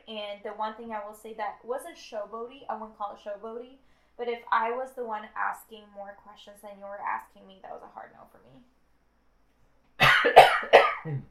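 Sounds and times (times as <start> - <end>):
speech: 0.1 - 8.8, 11.0 - 11.2
person coughing harshly: 10.0 - 11.2.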